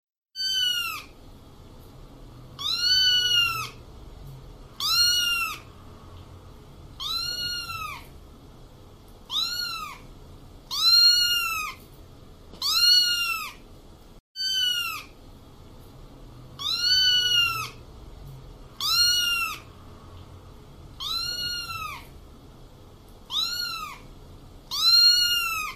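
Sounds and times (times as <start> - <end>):
kitten sounds: 0.4 - 1.2, 2.5 - 8.2, 9.2 - 13.7, 14.4 - 15.2, 16.5 - 20.3, 20.9 - 22.2, 23.2 - 25.7.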